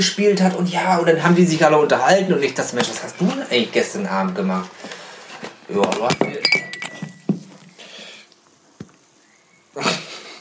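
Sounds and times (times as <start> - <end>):
speech: 0.0 - 5.0, 5.7 - 6.7
drinking glass clinking and clattering: 6.1 - 7.3.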